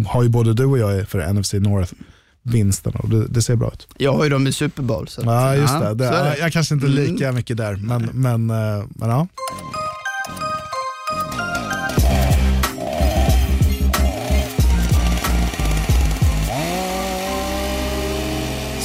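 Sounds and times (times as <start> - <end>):
speech: 0.0 - 9.8
chiming tones: 9.4 - 12.5
chainsaw running: 11.5 - 18.8.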